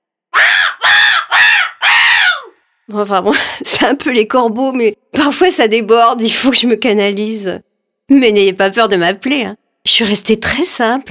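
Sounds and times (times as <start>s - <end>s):
voice imitating macaque monkeys screeching: 0.4s - 2.6s
speech: 2.9s - 11.0s.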